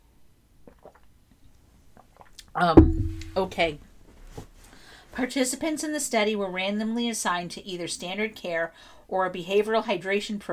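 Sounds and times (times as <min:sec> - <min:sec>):
person swallowing and gulping water: 0:00.6 - 0:01.2, 0:01.9 - 0:03.4
speech: 0:02.6 - 0:03.9, 0:05.2 - 0:10.5.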